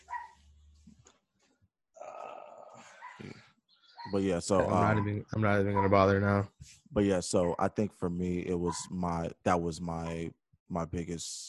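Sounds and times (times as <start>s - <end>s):
dog barking: 0.0s - 0.4s, 3.0s - 3.3s, 4.0s - 6.2s, 8.6s - 9.0s
speech: 4.1s - 11.4s.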